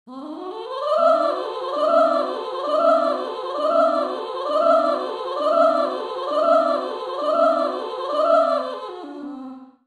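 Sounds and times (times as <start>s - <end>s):
C dom arpeggio: 1.9s - 8.4s.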